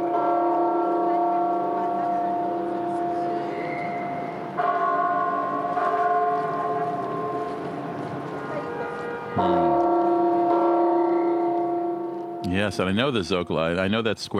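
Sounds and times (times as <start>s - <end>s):
faint murmur of outdoor crowd noise: 0.0s - 4.6s, 5.2s - 12.0s
large cathedral bells rung by hand in a city square: 0.0s - 13.7s
speech: 9.4s - 9.7s, 12.7s - 14.3s.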